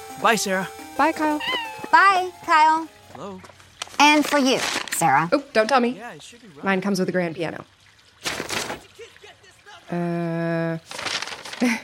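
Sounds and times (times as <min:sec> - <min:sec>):
speech: 0:00.2 - 0:08.3, 0:09.9 - 0:11.0, 0:11.6 - 0:11.8
blank sheet of paper crinkling: 0:03.5 - 0:05.1, 0:08.2 - 0:08.9, 0:10.8 - 0:11.8.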